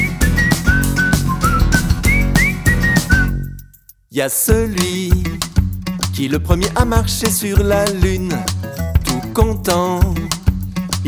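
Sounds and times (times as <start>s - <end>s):
band accompaniment with a thumping beat: 0.0s - 3.5s, 4.5s - 11.0s
person whistling a bright lilting melody: 0.0s - 4.0s, 8.2s - 10.3s
speech: 4.2s - 5.5s, 6.2s - 10.3s.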